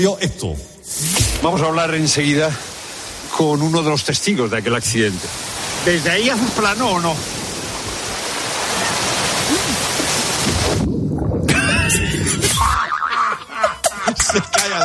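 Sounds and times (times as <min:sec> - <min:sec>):
speech: 0:00.0 - 0:02.7, 0:03.4 - 0:07.4
rushing water: 0:00.9 - 0:14.8
wind noise: 0:04.8 - 0:12.8
person falling into the sea with a splash: 0:05.5 - 0:12.8
laughter: 0:11.5 - 0:14.8.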